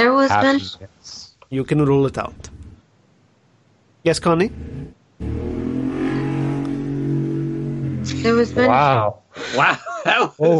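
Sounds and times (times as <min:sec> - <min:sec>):
speech: 0:00.2 - 0:02.6, 0:04.0 - 0:05.7, 0:08.0 - 0:10.5
motorcycle engine revving next door: 0:04.2 - 0:08.8
laughter: 0:09.4 - 0:10.5.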